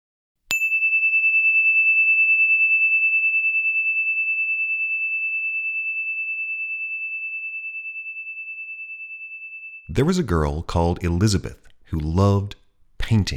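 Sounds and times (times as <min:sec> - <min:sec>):
single bell struck: 0:00.5 - 0:10.3
speech: 0:10.0 - 0:13.3.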